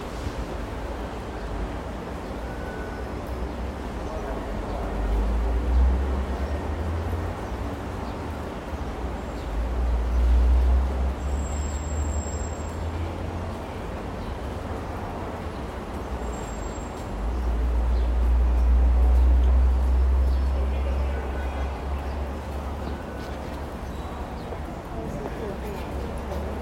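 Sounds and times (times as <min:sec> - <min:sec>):
metro train running with a deep rumble: 0:00.0 - 0:11.7, 0:12.4 - 0:26.6.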